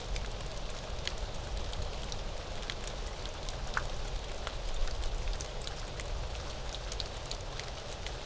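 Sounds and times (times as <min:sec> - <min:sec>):
rain splattering on a platform: 0:00.0 - 0:08.2.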